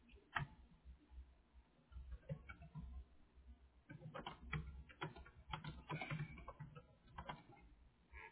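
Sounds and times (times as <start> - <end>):
typing on a computer keyboard with soft keystroke clicks: 1.9 - 3.0, 3.9 - 7.7.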